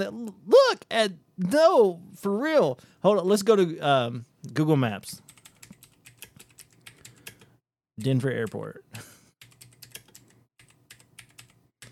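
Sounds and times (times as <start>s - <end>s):
speech: 0.0s - 5.2s, 8.0s - 9.1s
slow hunt-and-peck typing on a computer keyboard: 5.3s - 7.5s, 9.4s - 11.9s.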